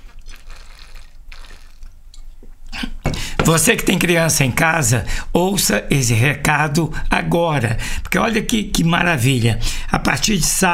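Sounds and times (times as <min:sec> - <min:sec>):
sipping water with slurps and swallows: 0:00.0 - 0:03.4
steady low hum: 0:00.0 - 0:10.7
speech: 0:02.8 - 0:10.7.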